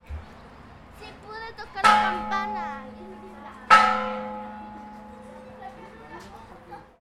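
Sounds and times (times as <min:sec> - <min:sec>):
trisada bell ringing: 0:01.8 - 0:06.0.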